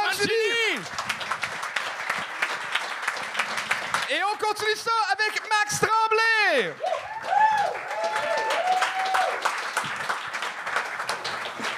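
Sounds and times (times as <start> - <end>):
crowd applauding: 0.0 - 11.7
speech: 4.1 - 8.7.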